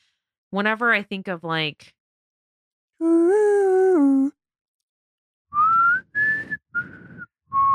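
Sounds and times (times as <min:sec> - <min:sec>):
speech: 0:00.5 - 0:02.0, 0:03.0 - 0:04.4
person whistling a short tune: 0:05.5 - 0:07.7.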